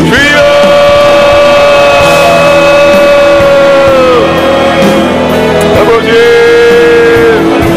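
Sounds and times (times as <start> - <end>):
sustained wailing tones of praying crowd: 0.0 - 7.6
large crowd shouting overlapping prayers in a reverberant space: 0.2 - 5.0.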